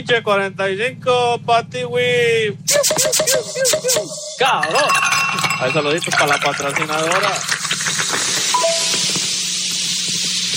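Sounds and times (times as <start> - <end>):
speech: 0.0 - 8.0
large beer bottle opened releasing a fizzing hiss: 5.4 - 10.5.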